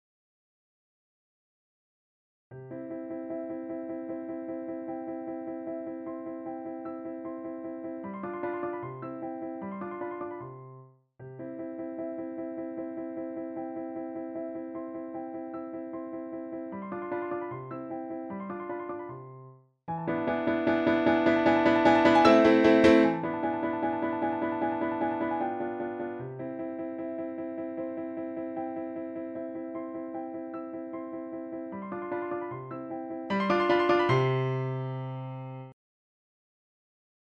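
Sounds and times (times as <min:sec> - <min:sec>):
piano exercise: 0:02.5 - 0:35.8.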